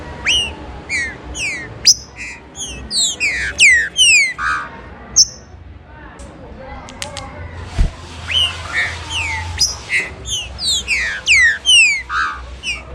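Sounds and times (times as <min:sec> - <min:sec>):
Green-winged Saltator bright whistled downslurs and chirps: 0:00.2 - 0:04.2, 0:08.2 - 0:12.9.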